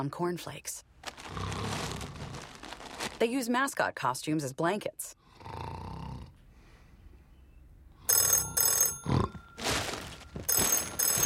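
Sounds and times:
speech: 0:00.0 - 0:01.6, 0:03.2 - 0:05.2
low snore-like rumble: 0:05.3 - 0:06.4
telephone bell ringing: 0:08.1 - 0:11.2.

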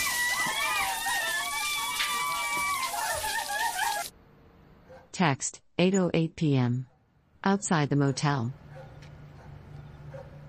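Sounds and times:
shower spraying water: 0:00.0 - 0:04.1
speech: 0:05.2 - 0:08.6.

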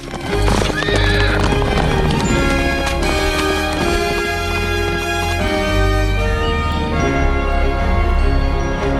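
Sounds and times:
horse hooves galloping: 0:00.0 - 0:05.8
sustained music: 0:00.0 - 0:08.9
horse whinny: 0:00.4 - 0:03.4.

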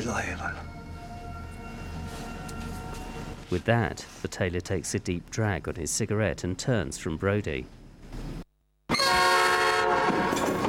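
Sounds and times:
speech: 0:00.0 - 0:00.8, 0:03.5 - 0:08.2
train horn blaring: 0:00.7 - 0:03.4, 0:08.9 - 0:10.6.

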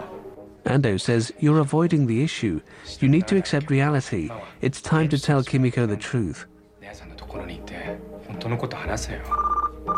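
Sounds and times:
speech: 0:00.7 - 0:09.9
telephone ringing in short rapid electronic pulses: 0:09.3 - 0:09.9.

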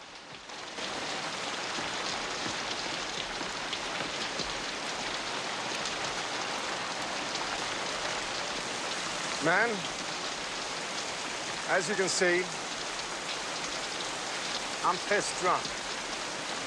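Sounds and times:
heavy torrential rain drumming on surfaces: 0:00.0 - 0:16.6
speech: 0:09.4 - 0:10.0, 0:11.7 - 0:12.6, 0:14.8 - 0:15.8.

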